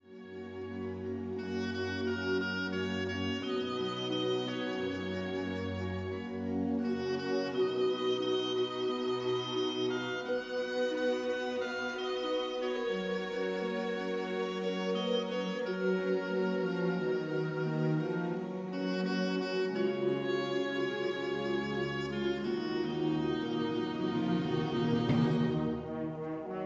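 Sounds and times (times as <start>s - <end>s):
instrumental music: 0.0s - 26.6s.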